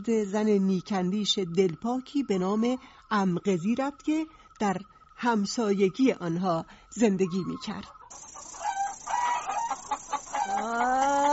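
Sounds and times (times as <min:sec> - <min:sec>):
speech: 0:00.0 - 0:08.3
hens and chicks clucking: 0:07.2 - 0:11.3
rooster crowing: 0:08.1 - 0:11.3.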